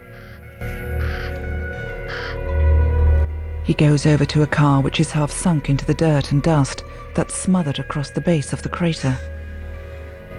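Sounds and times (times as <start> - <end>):
black-feathered birds cawing on a caravan roof: 0.0 - 2.5
speech: 3.7 - 9.3.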